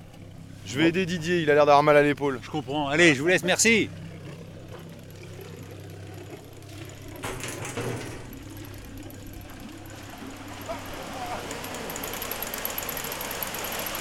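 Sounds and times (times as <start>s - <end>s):
low hum: 0.0s - 13.9s
speech: 0.7s - 4.0s
manual canal lock sluice gate cranked by hand, clanking and ratcheting: 1.7s - 13.9s
broad rush of water flowing through canal lock sluices: 3.0s - 13.9s.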